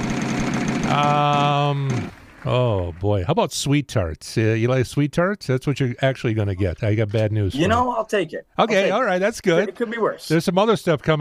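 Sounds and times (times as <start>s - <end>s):
prize wheel spinning with mechanical clicking: 0.0s - 2.1s
speech: 0.9s - 11.1s.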